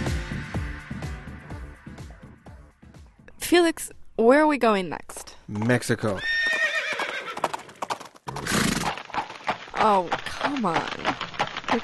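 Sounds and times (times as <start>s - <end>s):
speech: 3.5s - 6.3s, 9.8s - 11.8s
horse hooves clip-clopping: 5.5s - 11.8s
horse whinnying: 6.1s - 9.1s
horse snorting: 6.3s - 11.8s.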